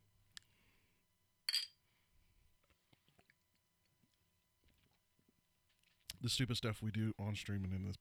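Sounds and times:
tall glass Coke bottles clinking together in a toast: 1.5 - 1.7
speech: 6.2 - 7.9.

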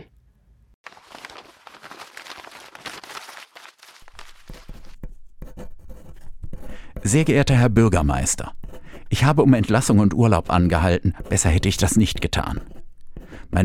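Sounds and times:
pen scratching as letters are written by hand on paper: 4.3 - 7.4, 8.2 - 13.6
speech: 7.1 - 12.7.

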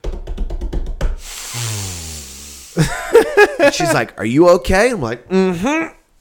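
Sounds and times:
voice imitating forceful breath-work hissing exhales: 1.2 - 3.3
laughter: 2.8 - 4.1
speech: 2.8 - 6.0.

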